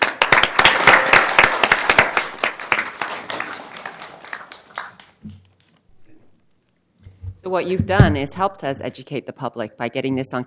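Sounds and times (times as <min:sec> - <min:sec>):
room full of people applauding: 0:00.0 - 0:05.2
speech: 0:07.5 - 0:10.4.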